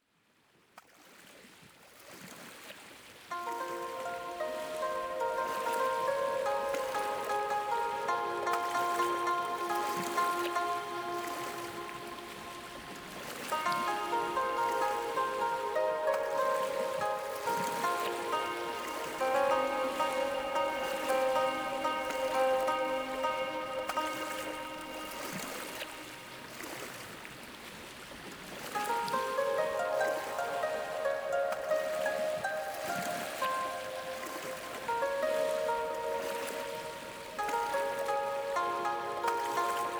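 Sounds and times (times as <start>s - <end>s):
ocean waves on a beach: 1.1s - 39.9s
relaxing oriental sleep music: 3.3s - 27.7s, 28.5s - 39.9s.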